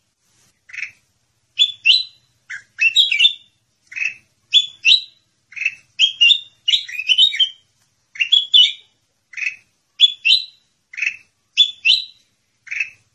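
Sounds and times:
sooty-headed bulbul chirping: 1.6 - 7.6, 8.2 - 13.1.

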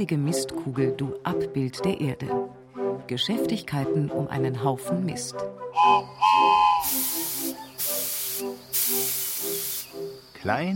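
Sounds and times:
speech: 0.0 - 7.0, 10.4 - 10.7
small steam locomotive hissing steam: 5.8 - 10.3.

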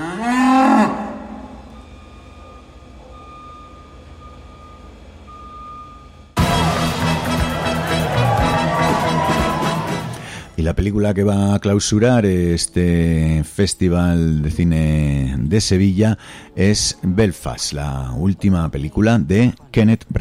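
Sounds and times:
cow mooing: 0.0 - 1.7
quiet steady tones: 1.2 - 6.4
loud dense noise: 6.4 - 10.5
speech: 10.7 - 20.1.

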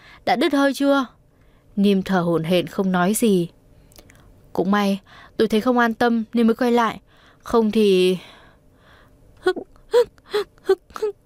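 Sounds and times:
speech: 0.2 - 1.2, 1.8 - 3.6, 4.5 - 8.4, 9.4 - 11.2
child sobbing: 9.4 - 11.2.

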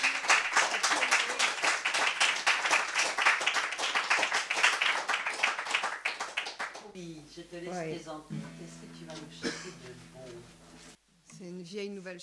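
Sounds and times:
audience applause for a guest: 0.0 - 6.9
speech: 7.2 - 12.2.

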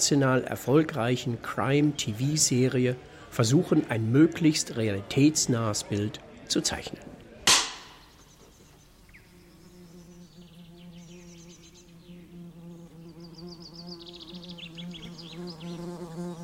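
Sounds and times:
speech: 0.0 - 7.2
sharp knock: 7.5 - 8.1
wasp buzzing in peak wasp season: 8.8 - 16.4.

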